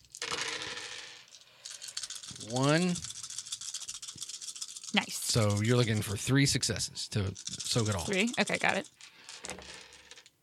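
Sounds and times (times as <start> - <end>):
six dice clattering across a hard tabletop: 0.0 - 6.6, 7.2 - 10.4
speech: 2.4 - 3.1, 4.9 - 9.8.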